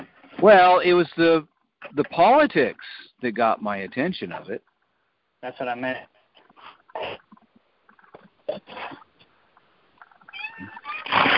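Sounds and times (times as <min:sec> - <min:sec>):
speech: 0:00.4 - 0:04.7, 0:05.4 - 0:06.1, 0:08.5 - 0:09.0
cat meowing and yowling: 0:10.3 - 0:11.2.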